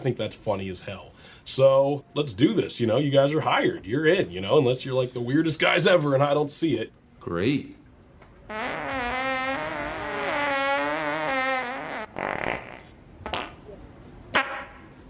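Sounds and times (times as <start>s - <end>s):
speech: 0.0s - 7.8s
fart in a small room: 8.5s - 14.8s.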